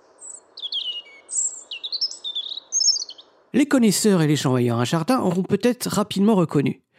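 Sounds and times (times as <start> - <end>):
small European garden songbird singing: 0.0 - 5.5
speech: 3.6 - 6.8.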